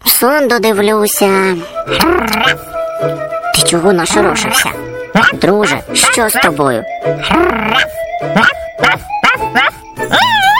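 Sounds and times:
speech: 0.2 - 9.1
dog barking and yelping: 7.7 - 10.5.

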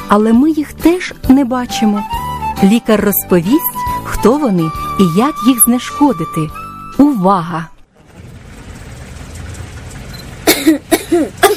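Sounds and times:
speech: 0.1 - 7.7, 10.6 - 11.5
child coughing: 10.4 - 11.5.

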